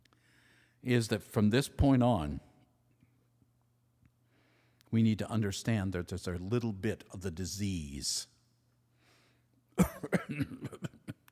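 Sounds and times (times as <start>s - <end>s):
speech: 0.8s - 2.5s, 4.9s - 8.3s, 9.8s - 11.0s
person coughing with throaty hacks and splutters: 9.8s - 11.2s.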